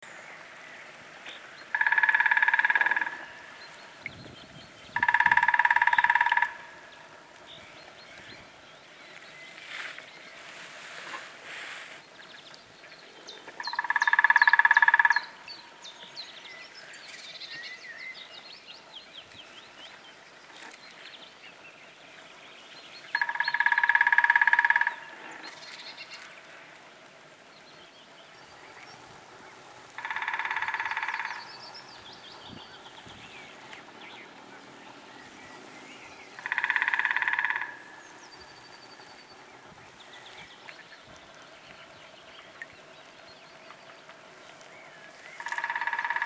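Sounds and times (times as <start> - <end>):
Dendrocopos minor: 1.7 - 3.4, 4.9 - 6.8, 13.6 - 15.4, 23.1 - 25.2, 30.0 - 31.7, 36.4 - 37.9, 45.4 - 46.2.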